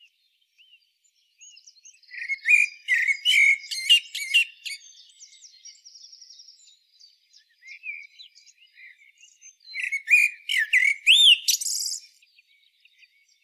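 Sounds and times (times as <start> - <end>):
common blackbird singing: 0.0 - 13.4.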